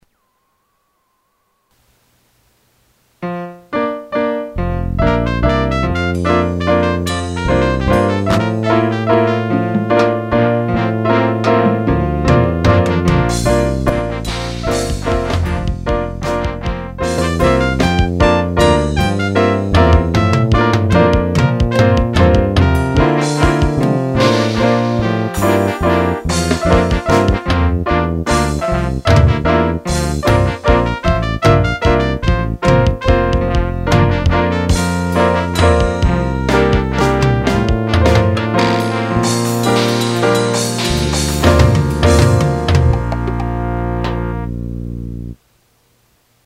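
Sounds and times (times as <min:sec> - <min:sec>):
waltz on trumpet: 0:03.2 - 0:45.4.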